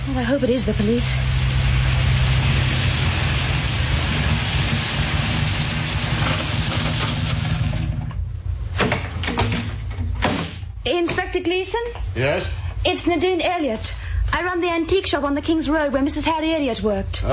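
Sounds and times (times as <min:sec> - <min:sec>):
car engine rumbling: 0:00.0 - 0:08.7
broadband noise: 0:00.0 - 0:17.3
speech: 0:00.1 - 0:01.5, 0:11.0 - 0:17.3.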